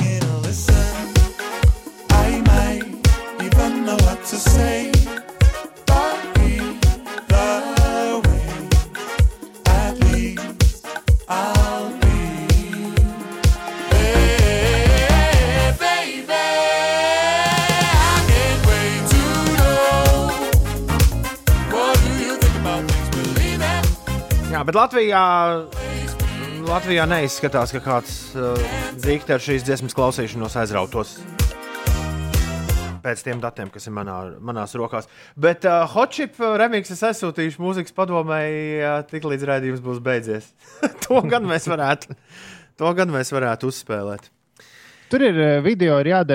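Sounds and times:
Icelandic electronic pop song with kick drum and synths: 0.0s - 33.0s
speech: 24.7s - 26.0s, 26.7s - 31.4s, 33.0s - 44.4s, 45.1s - 46.3s
laughter: 40.7s - 42.1s.

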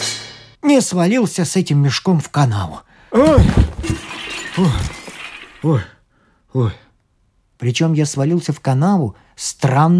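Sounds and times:
speech: 0.8s - 4.0s, 4.6s - 5.0s, 5.6s - 6.8s, 7.6s - 9.9s
drinking glasses shattering: 3.2s - 5.7s.

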